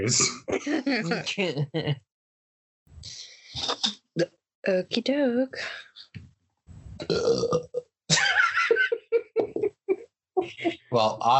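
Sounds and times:
person burping: 0:00.0 - 0:01.2, 0:07.0 - 0:07.9
speech: 0:00.0 - 0:02.1, 0:03.0 - 0:05.9, 0:07.0 - 0:08.4, 0:10.4 - 0:11.3
laughter: 0:08.1 - 0:11.3.

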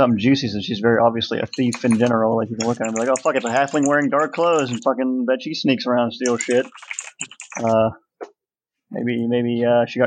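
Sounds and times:
speech: 0:00.0 - 0:08.0, 0:08.9 - 0:10.0
typing on a computer keyboard: 0:01.5 - 0:04.9, 0:06.2 - 0:07.8.

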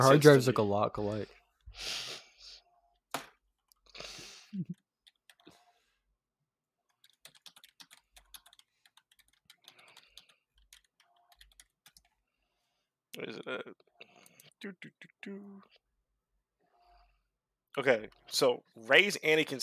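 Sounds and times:
speech: 0:00.0 - 0:02.1, 0:13.2 - 0:13.8, 0:14.6 - 0:15.8, 0:17.8 - 0:19.6
computer mouse clicking while a folder is opened: 0:06.9 - 0:12.2.

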